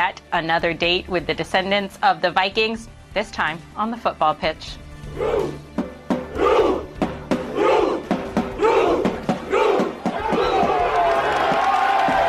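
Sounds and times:
speech: 0.1 - 5.7
football fans shouting in a chant: 5.1 - 5.6, 6.2 - 12.2
football fans clapping in unison: 10.2 - 12.2.

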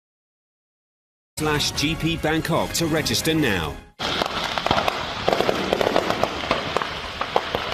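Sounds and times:
speech: 1.4 - 4.2
firework pops and sharp cracks from a detonating fireworks stand: 4.0 - 7.7.

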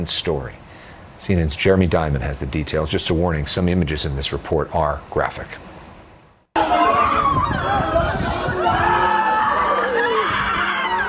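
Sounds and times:
speech: 0.0 - 0.6, 1.2 - 5.7
crowd of distressed people shrieking and wailing: 6.6 - 11.0.

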